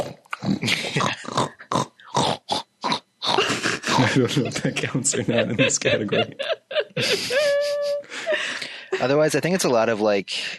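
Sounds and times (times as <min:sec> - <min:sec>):
pig grunting and snorting: 0:00.0 - 0:04.0
speech: 0:00.4 - 0:01.6, 0:04.2 - 0:07.4, 0:09.0 - 0:10.5
laughter: 0:03.4 - 0:10.2.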